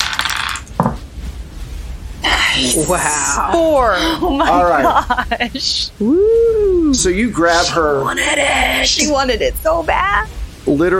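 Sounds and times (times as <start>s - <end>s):
dice rolling across a hard table in a tabletop game: 0.0s - 1.0s
speech: 2.6s - 10.9s
laughter: 3.5s - 5.9s.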